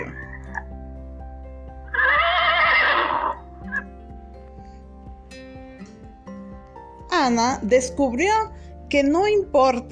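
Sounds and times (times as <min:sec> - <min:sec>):
horse neighing: 0:01.9 - 0:03.8
speech: 0:07.3 - 0:09.9.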